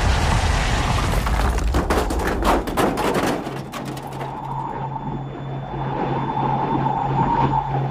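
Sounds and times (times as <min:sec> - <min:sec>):
airplane crash-landing with scraping, banging impacts: 0:00.6 - 0:04.7
steady mechanical drone with a low hum: 0:04.2 - 0:07.8.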